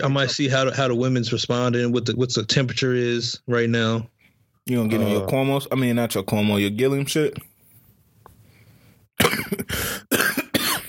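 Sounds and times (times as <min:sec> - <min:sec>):
speech: 0:00.0 - 0:04.1, 0:04.7 - 0:07.5
person coughing harshly and raspily: 0:09.2 - 0:10.8.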